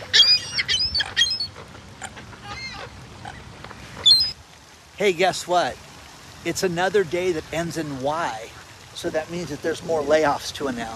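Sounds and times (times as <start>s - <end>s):
seagulls calling: 0.0s - 4.4s
speech: 5.0s - 5.8s, 6.4s - 10.9s.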